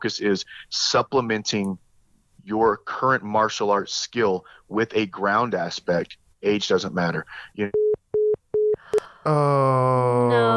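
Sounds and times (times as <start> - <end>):
speech: 0.0 - 1.8, 2.4 - 7.8, 9.2 - 10.5
phone line beeps after a call is cut off: 7.7 - 8.8.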